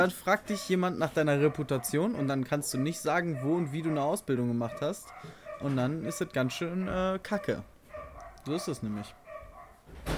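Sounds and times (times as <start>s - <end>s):
speech: 0.0s - 7.7s, 8.4s - 9.2s
loud dogs barking: 0.4s - 9.9s.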